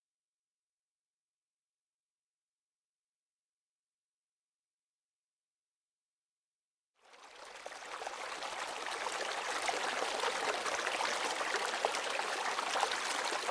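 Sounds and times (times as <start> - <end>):
small stream trickling over emerald moss: 7.0 - 13.5.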